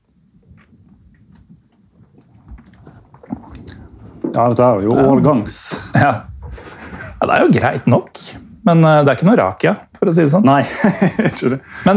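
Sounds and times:
swallows: 0.4s - 7.2s
low rumble: 0.4s - 8.8s
person slowly sipping a strong vintage alcoholic drink: 2.6s - 4.2s
speech: 4.4s - 6.3s, 7.2s - 11.9s
laughter: 10.6s - 11.9s.

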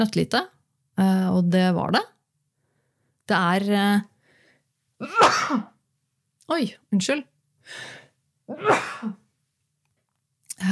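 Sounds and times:
speech: 0.0s - 2.1s, 3.3s - 4.1s, 5.0s - 5.7s, 6.5s - 9.2s, 10.6s - 10.7s
person sneezing: 5.0s - 5.8s, 8.5s - 9.2s.

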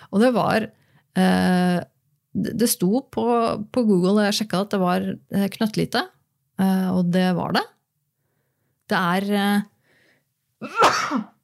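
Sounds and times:
speech: 0.1s - 7.7s, 8.9s - 9.7s, 10.6s - 11.3s
sneeze: 10.6s - 11.4s.

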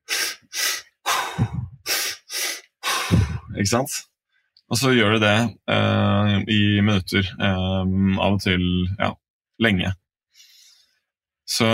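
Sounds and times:
rapid hyperventilating breaths through the mouth: 0.0s - 3.6s, 10.3s - 11.0s
speech: 3.6s - 4.1s, 4.7s - 10.0s, 11.5s - 11.7s.

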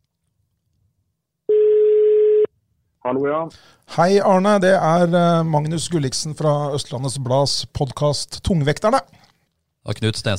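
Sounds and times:
telephone ringback tone on an outgoing call: 1.5s - 2.5s
speech: 3.1s - 10.3s.

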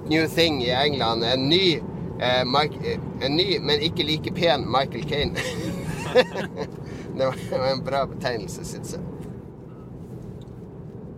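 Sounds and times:
car engine low rumble while driving: 0.0s - 11.1s
faint road noise: 0.0s - 11.1s
speech: 0.1s - 9.1s
laughter: 5.4s - 6.7s.

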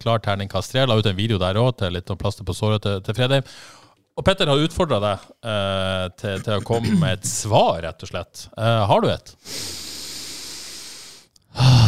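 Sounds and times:
speech: 0.0s - 9.9s
deep breath drawn in: 9.4s - 11.8s.

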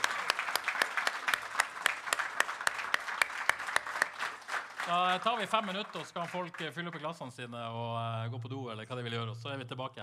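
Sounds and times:
audience applause with clapping from many hands: 0.0s - 7.4s
speech: 4.9s - 10.0s.

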